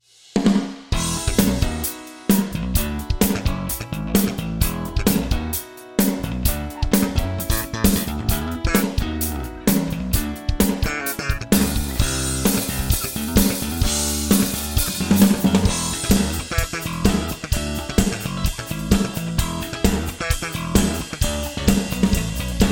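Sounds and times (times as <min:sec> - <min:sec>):
band drums in a stone wall room: 0:00.0 - 0:22.7.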